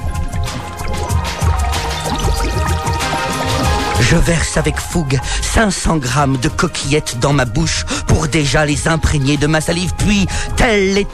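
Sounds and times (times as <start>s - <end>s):
salted water boiling in a pot on the stove: 0.0s - 4.2s
speech: 4.0s - 11.1s.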